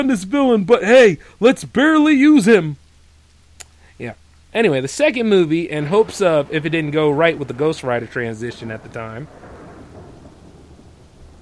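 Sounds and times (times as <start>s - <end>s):
speech: 0.0s - 2.8s, 4.0s - 9.5s
steady rainfall: 0.0s - 11.4s
deep continuous thunder rumbling: 4.6s - 11.4s.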